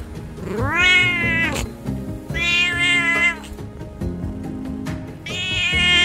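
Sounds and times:
Singapura cat meowing: 0.4 - 1.7, 2.3 - 3.6, 5.2 - 6.0.

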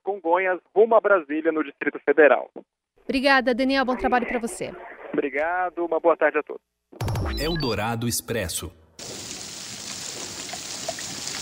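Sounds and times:
speech: 0.2 - 6.7, 7.3 - 9.1
steady rain pouring down: 9.0 - 11.4.

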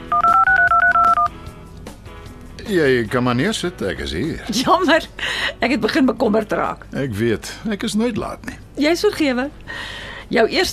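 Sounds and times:
telephone number dialed by keypad touch-tone beeps: 0.1 - 1.3
speech: 2.7 - 10.7.

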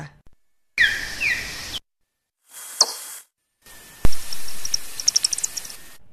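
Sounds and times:
hissy background: 0.8 - 1.8, 2.4 - 6.1
pitch-shifted bat echolocation chirps and downward sweeps: 0.8 - 1.8, 2.6 - 6.0.

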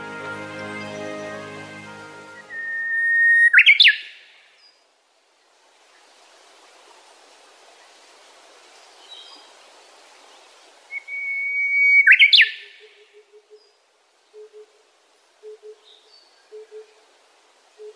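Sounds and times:
Japanese bush warbler singing on Daigenji Plateau in Niigata Prefecture Japan: 2.4 - 4.1, 10.9 - 12.8.

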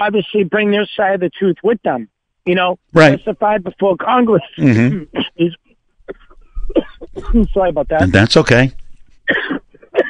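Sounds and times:
speech: 0.0 - 8.8
faint murmur of voice: 4.6 - 5.3
raspy throat clearing: 4.6 - 5.4, 6.1 - 7.5, 9.3 - 10.0.

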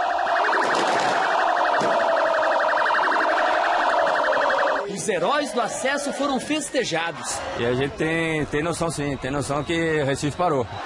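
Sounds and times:
fire brigade truck siren in Recife, Brazil: 0.0 - 6.4
football fans celebrating in the streets of Recife, Brazil: 0.0 - 10.8
speech: 5.1 - 10.8.

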